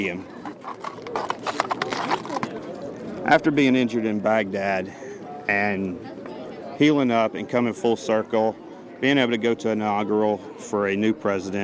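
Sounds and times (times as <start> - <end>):
speech: 0.0 - 6.2, 6.8 - 11.6
faint murmuring voices: 0.0 - 11.6
horse hooves clip-clopping: 0.4 - 2.8.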